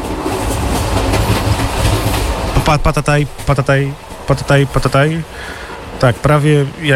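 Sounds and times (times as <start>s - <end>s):
train clattering along rails: 0.0s - 6.9s
speech: 2.7s - 6.9s.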